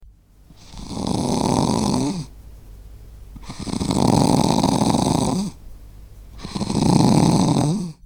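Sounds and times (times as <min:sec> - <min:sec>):
animal snoring: 0:00.5 - 0:02.3, 0:03.4 - 0:05.6, 0:06.3 - 0:08.0.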